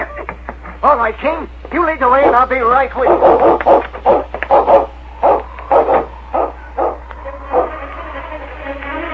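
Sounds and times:
speech: 0:00.8 - 0:04.9
Malamute dog barking sharp yaps: 0:03.0 - 0:07.8
Malamute dog howling: 0:03.0 - 0:08.5.

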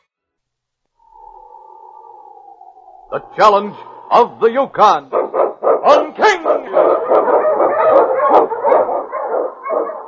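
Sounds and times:
speech: 0:03.1 - 0:05.2, 0:05.8 - 0:07.7
husky-type lead dog barking and yelping: 0:05.0 - 0:10.0.

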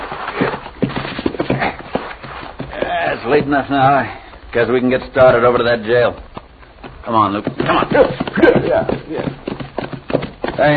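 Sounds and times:
horse hooves clip-clopping: 0:00.0 - 0:10.7
speech: 0:03.2 - 0:06.3, 0:07.1 - 0:09.4, 0:10.6 - 0:10.7.

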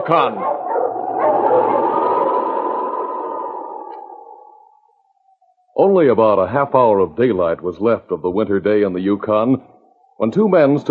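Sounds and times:
speech: 0:00.0 - 0:00.6, 0:01.2 - 0:02.0, 0:05.8 - 0:10.8
dog barking and howling: 0:00.0 - 0:04.8.

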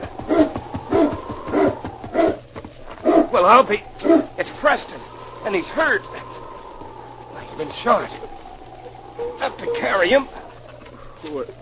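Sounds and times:
sled dog team whimpering: 0:00.1 - 0:04.4, 0:08.2 - 0:11.3
speech: 0:03.4 - 0:06.2, 0:07.6 - 0:08.4, 0:09.2 - 0:10.4, 0:11.2 - 0:11.5.

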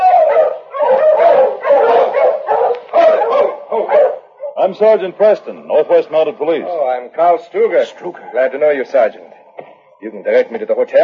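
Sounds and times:
pack of sled dogs barking, yipping and howling: 0:00.0 - 0:04.8
speech: 0:04.7 - 0:09.4, 0:10.0 - 0:11.0.

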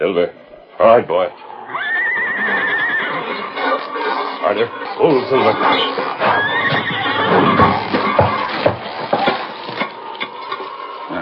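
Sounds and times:
speech: 0:00.0 - 0:01.5, 0:04.5 - 0:07.9
horse neighing and whinnying while pulling jail bars: 0:00.5 - 0:11.2
scraping and straining noise of jail bars dragged by rope: 0:00.7 - 0:11.2
sharp knocks: 0:05.9 - 0:10.0.

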